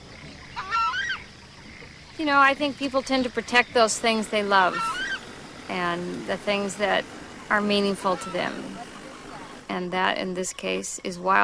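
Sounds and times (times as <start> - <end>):
steady hiss: 0.0 - 11.4
southern screamer honking calls: 0.4 - 1.3, 3.7 - 9.8
speech: 2.2 - 5.0, 5.7 - 8.9, 9.7 - 11.4.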